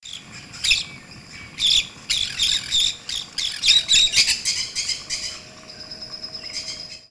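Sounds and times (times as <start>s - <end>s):
Pyrrhura frontalis calling: 0.1s - 7.0s.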